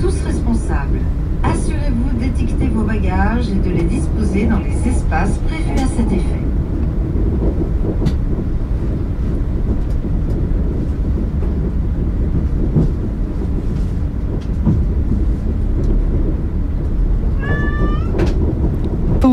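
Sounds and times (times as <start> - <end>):
loud steady passenger train rumble: 0.0 - 19.3
speech: 3.0 - 6.5, 7.8 - 8.2
cat on a leash meowing aboard a passenger train: 17.4 - 18.3.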